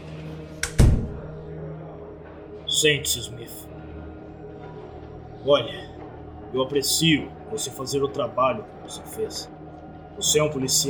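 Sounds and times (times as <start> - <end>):
low steady hum: 0.0 - 10.8
door swinging shut with a heavy booming thud: 0.6 - 1.3
speech: 2.8 - 3.8, 5.4 - 9.6, 10.2 - 10.8.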